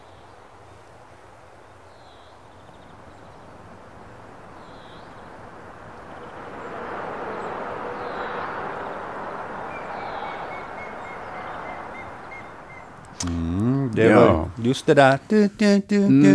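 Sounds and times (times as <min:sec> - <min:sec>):
steady motorway traffic roar: 0:02.5 - 0:14.7
grey-headed woodpecker territorial call beside the motorway: 0:09.7 - 0:13.2
speech: 0:14.0 - 0:16.3.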